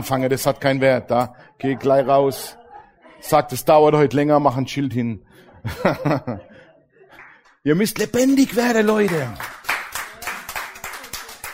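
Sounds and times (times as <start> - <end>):
speech: 0.0 - 2.6, 3.2 - 6.5, 7.6 - 9.6
laughter: 5.3 - 7.4
audience at a sermon clapping in unison: 7.1 - 11.5.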